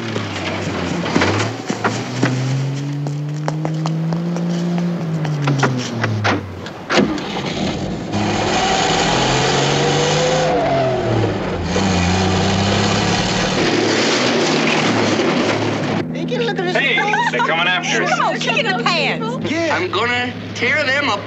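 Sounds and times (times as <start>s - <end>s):
stolen car engine revving through gear changes accelerating away: 0.0s - 21.2s
laughter: 16.2s - 20.3s.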